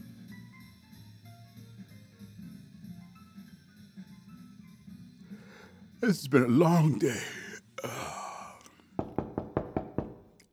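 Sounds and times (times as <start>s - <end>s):
speech: 6.0s - 7.4s
person sighing wearily: 6.0s - 8.8s
firm knocks on a door: 9.0s - 10.3s.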